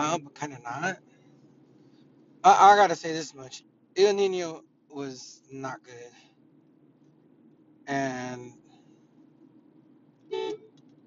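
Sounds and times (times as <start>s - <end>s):
quiet hum: 0.0s - 11.0s
speech: 0.2s - 1.1s, 2.4s - 6.3s, 7.9s - 8.6s
car horn honk: 10.3s - 10.8s.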